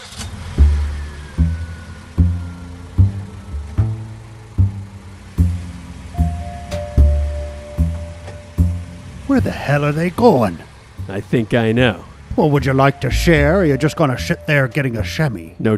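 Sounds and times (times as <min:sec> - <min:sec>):
car engine driving and accelerating: 0:00.0 - 0:15.7
speech: 0:09.3 - 0:15.7.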